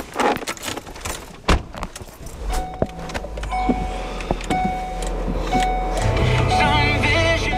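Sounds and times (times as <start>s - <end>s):
clicks and rustles inside a parked car: 0.0s - 6.1s
electric car windows whirring up and down: 2.4s - 7.5s.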